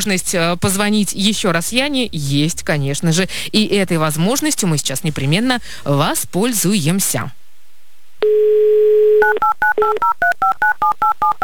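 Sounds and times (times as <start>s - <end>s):
speech: 0.0s - 7.4s, 8.2s - 11.4s
telephone dial tone: 8.2s - 10.1s.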